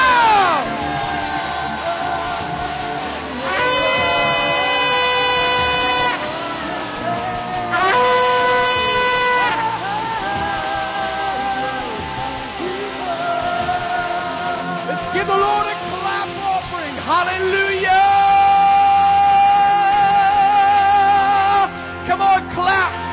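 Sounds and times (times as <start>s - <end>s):
sustained shouts above the crowd: 0.0s - 10.7s
large crowd roaring and cheering in praise: 0.0s - 23.1s.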